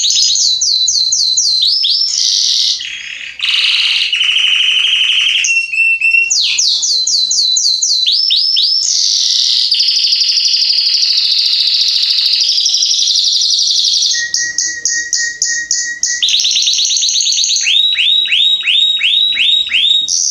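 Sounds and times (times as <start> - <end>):
male Belgian canary singing salsa estourado song: 0.0 - 20.2.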